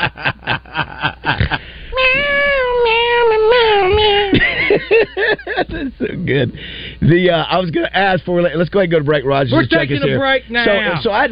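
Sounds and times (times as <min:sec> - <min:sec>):
speech: 0:00.0 - 0:01.6, 0:05.0 - 0:11.3
laughter: 0:00.0 - 0:01.8, 0:03.8 - 0:06.0
man in a studio meowing like a cat: 0:01.9 - 0:04.4.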